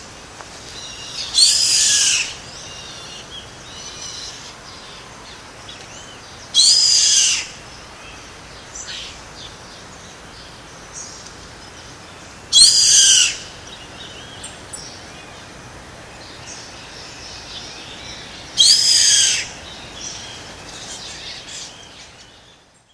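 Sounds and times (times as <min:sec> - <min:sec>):
steady hiss: 0:00.0 - 0:22.9
bird raspy screeching calls: 0:00.8 - 0:04.4, 0:06.6 - 0:07.5, 0:12.5 - 0:13.4, 0:18.6 - 0:19.6.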